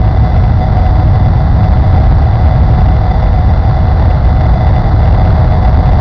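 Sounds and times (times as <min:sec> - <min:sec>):
airplane engine: 0:00.0 - 0:05.9.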